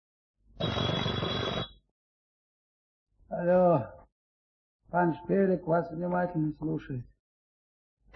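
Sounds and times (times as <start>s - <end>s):
telephone bell ringing: 0.6s - 1.8s
speech: 3.3s - 4.0s, 4.9s - 7.1s.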